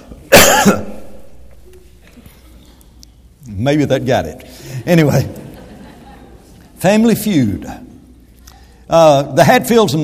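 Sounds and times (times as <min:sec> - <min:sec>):
person coughing to clear a popcorn husk from the throat: 0:00.3 - 0:01.1
speech: 0:03.6 - 0:05.4, 0:06.8 - 0:07.9, 0:08.9 - 0:10.0
laughter: 0:04.7 - 0:06.8.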